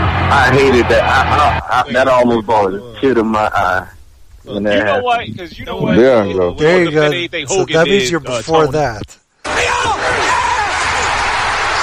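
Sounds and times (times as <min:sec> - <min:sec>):
large crowd roaring and cheering: 0:00.0 - 0:01.9, 0:09.4 - 0:11.8
individual voices yelling in a crowd: 0:00.0 - 0:02.1, 0:09.4 - 0:11.8
speech: 0:00.3 - 0:10.2.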